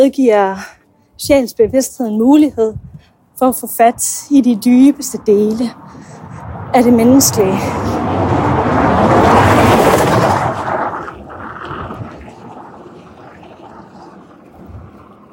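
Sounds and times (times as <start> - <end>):
speech: 0.0 - 8.4
traffic rumble: 0.0 - 15.3
vehicle passing: 3.9 - 15.3.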